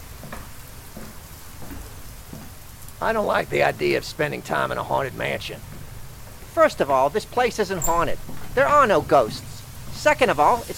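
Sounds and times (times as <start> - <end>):
footsteps splashing through rain: 0.0 - 10.7
rain hiss: 0.0 - 10.7
speech: 3.0 - 5.7, 6.6 - 10.7.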